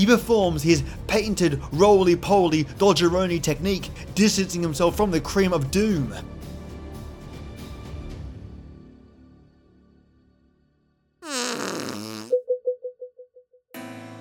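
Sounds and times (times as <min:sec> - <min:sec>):
speech: 0:00.0 - 0:06.4
short raspy fart: 0:11.2 - 0:12.4.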